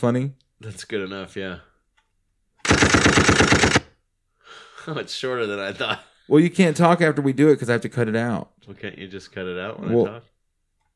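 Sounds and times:
speech: 0.0s - 1.7s, 4.5s - 10.3s
machine gun sound effect burst: 2.6s - 3.9s.

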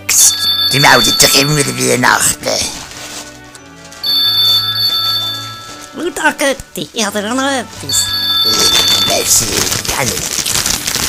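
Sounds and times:
electronic telephone ringing during a Christmas gathering: 0.1s - 2.3s, 4.0s - 6.3s, 7.8s - 9.6s
speech: 0.1s - 2.8s, 6.2s - 10.4s.

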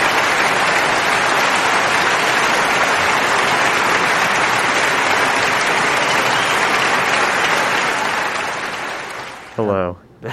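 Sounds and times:
audience applause for arriving guest: 0.0s - 9.8s.

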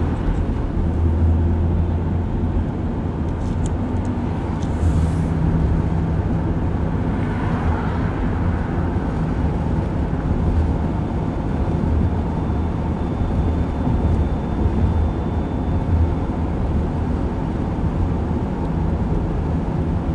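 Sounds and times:
rumble of a car driving to South Mountain in Phoenix Arizona: 0.0s - 20.1s.

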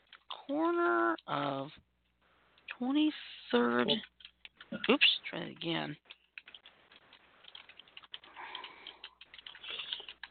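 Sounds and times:
speech: 0.5s - 1.9s, 2.8s - 4.1s, 4.7s - 6.2s
typing on a computer keyboard: 3.9s - 5.2s, 6.0s - 10.2s.

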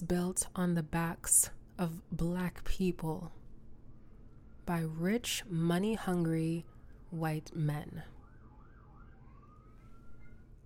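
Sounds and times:
speech: 0.0s - 3.4s, 4.7s - 8.2s
emergency siren wailing: 3.8s - 5.4s, 6.0s - 10.6s.

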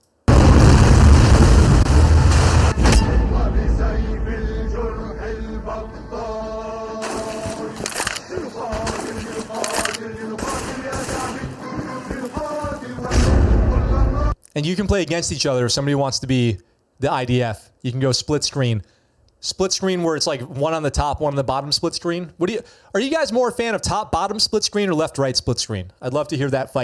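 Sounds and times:
video game hand grenade explosions from a tank: 0.2s - 5.5s, 13.1s - 14.2s
speech: 14.6s - 26.8s.

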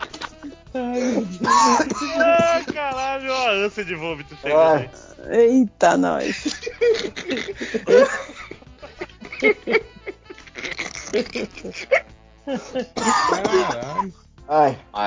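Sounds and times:
person coughing after laughing hard: 0.0s - 3.6s, 6.2s - 14.2s
speech: 3.5s - 8.3s, 9.4s - 9.9s, 11.1s - 15.0s.

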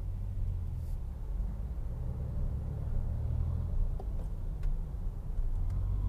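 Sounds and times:
car driving in traffic while merging into another lane: 0.0s - 6.0s.

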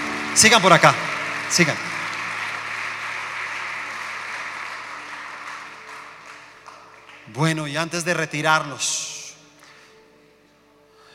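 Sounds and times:
audience applause welcoming newcomers: 0.0s - 7.5s
speech: 0.4s - 1.9s, 7.3s - 9.2s.

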